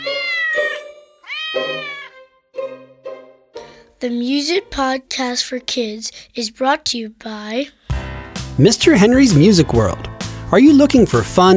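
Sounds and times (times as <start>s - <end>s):
cat meowing: 0.0s - 2.3s
speech: 4.0s - 7.8s, 8.6s - 11.5s.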